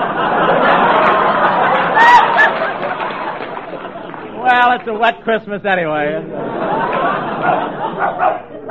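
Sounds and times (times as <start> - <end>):
laughter: 0.0 - 8.6
people chattering: 0.0 - 8.6
speech: 4.6 - 8.4
dog barking in quick bursts: 7.4 - 8.6.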